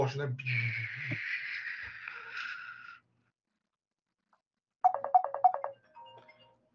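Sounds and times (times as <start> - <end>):
speech: 0.0 - 1.4
phone ringtone with pulsing tones and trailing melody: 4.8 - 6.4.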